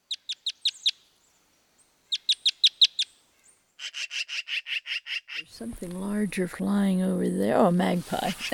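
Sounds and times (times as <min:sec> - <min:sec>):
red crossbills giving chip calls in a ponderosa pine: 0:00.0 - 0:01.1, 0:02.1 - 0:03.2, 0:03.8 - 0:06.0
speech: 0:05.6 - 0:08.5.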